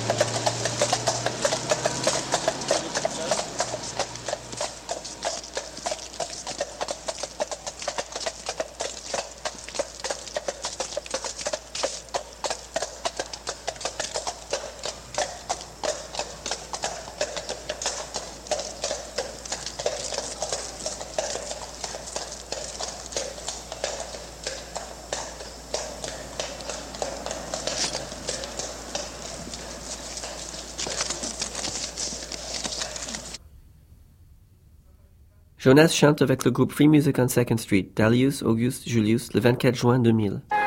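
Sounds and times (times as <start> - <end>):
horse hooves clip-clopping on pavement: 0.0 - 33.4
faint low hum: 0.0 - 40.5
speech: 35.6 - 40.5.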